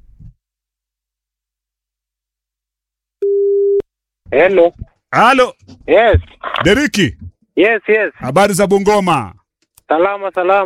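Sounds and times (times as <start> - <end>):
telephone line tone on a radio call-in line: 3.2 - 3.8
speech: 4.3 - 10.6.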